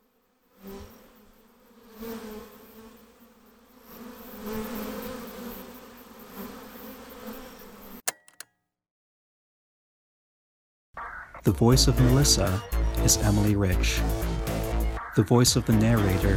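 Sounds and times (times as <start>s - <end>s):
bee buzzing: 0.4s - 8.0s
sharp clicks: 8.1s - 8.5s
speech: 11.4s - 14.3s, 15.2s - 16.3s.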